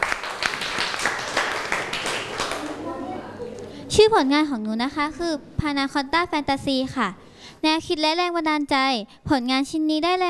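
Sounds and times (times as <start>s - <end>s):
crowd applauding: 0.0s - 2.9s
speech: 4.0s - 10.2s.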